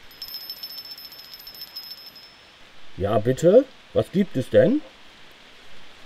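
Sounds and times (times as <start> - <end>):
small bell on a pull-cord bell line ringing in a fast trill: 0.0 - 2.6
speech: 3.0 - 4.9.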